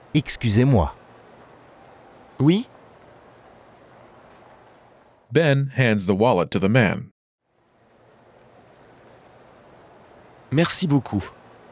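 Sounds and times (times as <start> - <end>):
faint high whine: 0.0 - 5.2, 7.6 - 11.7
train mechanical rumble at a station: 0.0 - 5.3, 7.6 - 11.7
speech: 0.2 - 1.0, 2.4 - 2.7, 5.3 - 7.1, 10.5 - 11.4.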